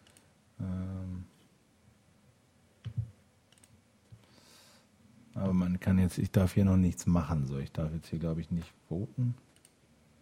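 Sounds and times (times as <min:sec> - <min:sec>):
computer mouse clicks: 0:00.0 - 0:00.3, 0:02.8 - 0:04.2, 0:09.5 - 0:09.8
speech: 0:05.5 - 0:09.5.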